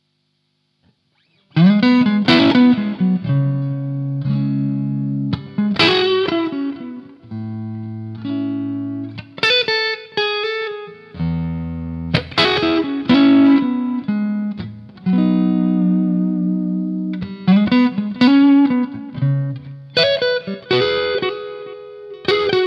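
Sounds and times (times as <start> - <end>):
guitar solo: 1.2 - 22.6.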